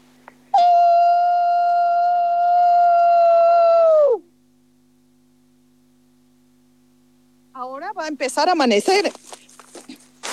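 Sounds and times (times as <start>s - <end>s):
wolf howling: 0.5s - 4.2s
speech: 8.0s - 9.2s.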